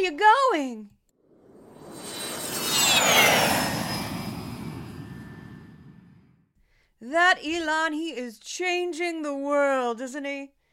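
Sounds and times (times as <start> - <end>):
speech: 0.0 - 1.0, 7.0 - 10.6
jet plane roaring past overhead: 1.3 - 6.4.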